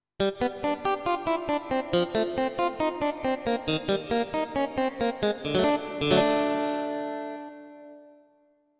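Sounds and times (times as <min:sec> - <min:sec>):
digital piano: 0:00.2 - 0:08.2
clean electric guitar: 0:01.6 - 0:08.2.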